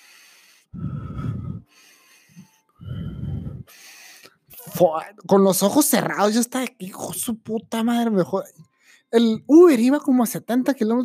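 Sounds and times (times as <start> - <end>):
voice imitating heavy labored rasping breathing: 0.7 - 1.8, 2.8 - 3.8
speech: 4.8 - 11.0.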